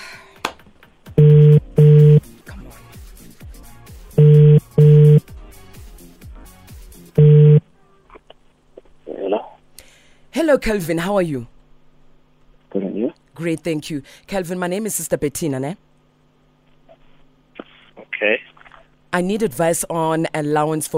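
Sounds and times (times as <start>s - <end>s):
telephone ringback tone in double bursts: 1.2s - 2.2s, 4.2s - 5.2s, 7.2s - 7.6s
speech: 10.5s - 11.6s, 13.4s - 15.9s, 19.2s - 20.9s.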